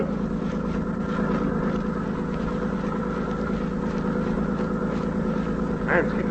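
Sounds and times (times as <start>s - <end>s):
landing barge engine droning across open water: 0.0s - 6.2s
speech: 5.9s - 6.2s.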